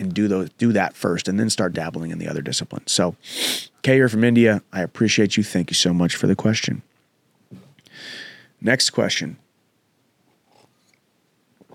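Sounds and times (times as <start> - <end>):
speech: 0.2 - 6.9, 8.0 - 9.4
slurping sip of coffee from a cup: 3.3 - 3.7, 10.4 - 11.0, 11.6 - 11.7.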